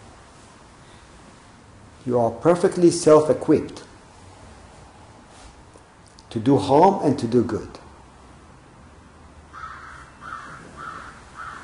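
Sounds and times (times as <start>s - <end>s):
low hum: 0.0s - 11.6s
speech: 2.0s - 3.8s, 6.3s - 7.8s
crow cawing: 9.5s - 11.6s.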